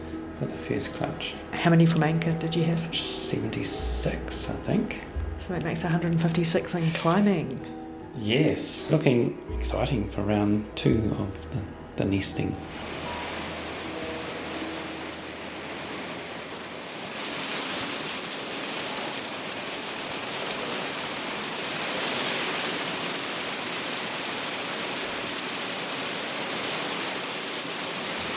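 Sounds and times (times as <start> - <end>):
speech: 0.4 - 13.0
hailstorm drumming down: 0.5 - 7.7, 11.5 - 28.3.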